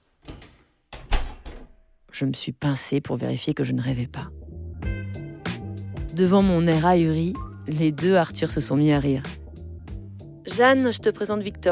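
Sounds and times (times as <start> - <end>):
door being closed: 0.1 - 1.8
speech: 2.2 - 4.4, 6.2 - 9.4, 10.5 - 11.7.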